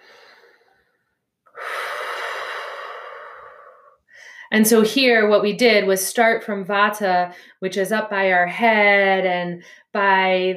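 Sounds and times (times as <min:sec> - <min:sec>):
deep breathing during a guided relaxation: 0:00.0 - 0:04.5
speech: 0:04.5 - 0:10.5.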